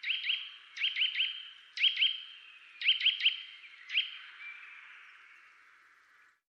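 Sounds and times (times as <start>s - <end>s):
Eurasian nuthatch Sitta europaea whistling sharp notes: 0.0s - 2.2s, 2.8s - 4.3s.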